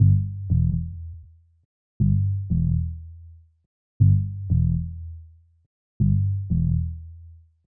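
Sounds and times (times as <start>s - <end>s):
bass loop in D minor: 0.0s - 1.2s, 2.0s - 3.0s, 4.0s - 5.0s, 6.0s - 7.0s.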